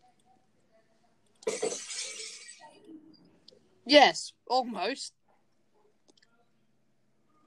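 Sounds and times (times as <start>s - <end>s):
glass shattering sound effect: 1.4s - 2.7s
glass shards tinkling as they scatter: 1.5s - 2.7s
speech: 3.9s - 5.2s.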